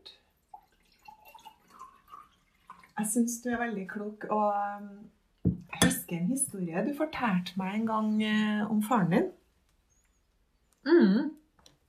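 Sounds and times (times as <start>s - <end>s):
water pouring from a carafe into a glass: 0.0s - 3.2s
speech: 3.0s - 5.2s, 5.8s - 9.4s.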